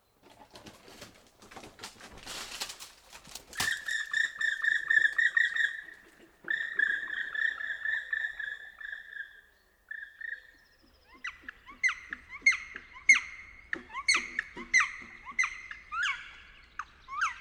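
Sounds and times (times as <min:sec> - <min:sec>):
rustling noise: 0:00.0 - 0:04.2
black woodpecker calling: 0:03.4 - 0:17.4.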